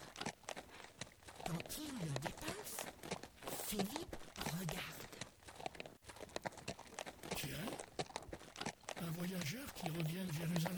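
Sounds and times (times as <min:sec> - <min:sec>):
horse hooves clopping on a road, pulling a chariot: 0:00.0 - 0:10.7
speech: 0:03.7 - 0:04.9, 0:09.4 - 0:10.7.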